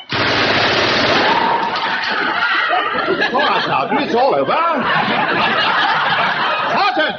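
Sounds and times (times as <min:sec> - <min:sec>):
rapid automatic gunfire at a firing range: 0:00.0 - 0:01.7
laughter: 0:01.7 - 0:07.1
speech: 0:03.3 - 0:05.9.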